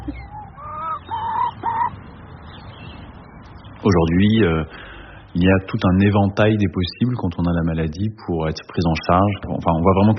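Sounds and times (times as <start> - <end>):
hen clucking: 0.0 - 2.2
speech: 3.8 - 10.1.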